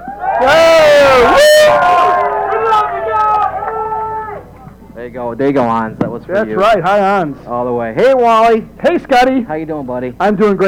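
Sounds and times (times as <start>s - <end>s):
live crowd cheering and yelling: 0.0s - 4.9s
speech: 5.3s - 10.6s.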